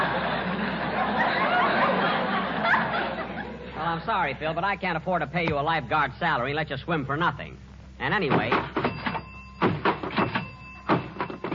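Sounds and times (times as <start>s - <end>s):
laughter: 0.0s - 4.0s
speech: 4.1s - 8.8s
diving board at a swimming pool being tested by bouncing: 8.2s - 11.5s.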